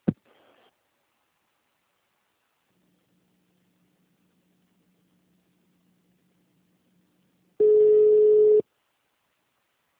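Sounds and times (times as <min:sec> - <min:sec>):
telephone tone while a call is transferred: 0:07.6 - 0:08.6.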